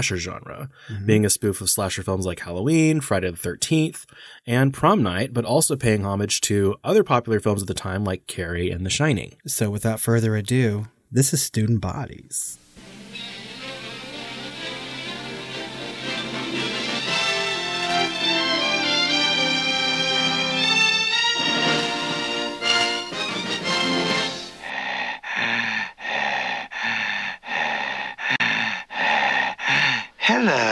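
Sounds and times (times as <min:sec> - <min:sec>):
speech: 0:00.0 - 0:12.6
dramatic music: 0:12.8 - 0:24.7
loud heavy rasping breathing: 0:24.5 - 0:30.7.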